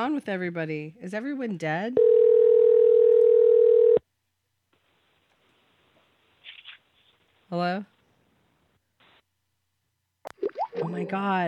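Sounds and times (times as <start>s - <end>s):
speech: 0.0s - 2.3s, 7.5s - 7.9s, 10.8s - 11.4s
loud steady telephone tone: 2.0s - 4.0s.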